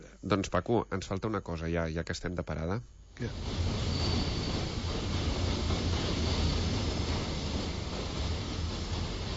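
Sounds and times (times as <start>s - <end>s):
speech: 0.2s - 3.9s
train rumbling on the rails while slowing to a stop: 3.3s - 9.3s
train wheel squeal: 3.3s - 9.3s.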